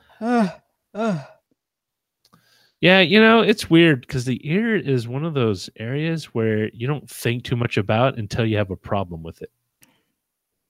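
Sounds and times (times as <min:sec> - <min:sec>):
person yawning: 0:00.0 - 0:01.4
speech: 0:02.8 - 0:09.6.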